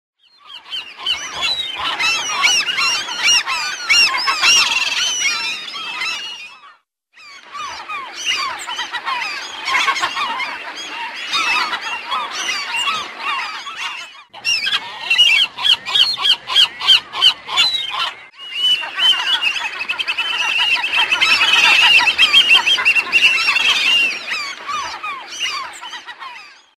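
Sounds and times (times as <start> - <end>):
large flock of black-headed gulls calling: 0.3 - 26.7.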